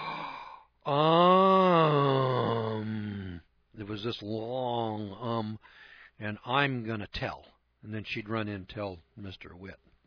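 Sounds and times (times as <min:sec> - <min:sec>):
long loud drawn-out moaning ohh: 0:00.0 - 0:03.4
person imitating a shocked gasp: 0:00.0 - 0:03.4
speech: 0:00.9 - 0:01.3, 0:03.9 - 0:09.9.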